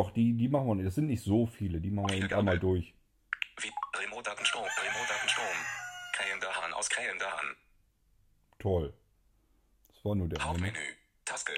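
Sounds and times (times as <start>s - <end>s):
speech: 0.0s - 3.0s, 3.6s - 7.6s, 8.6s - 9.0s, 10.0s - 11.5s
rooster crowing sound effect from a nature-sounds menu: 4.6s - 6.5s.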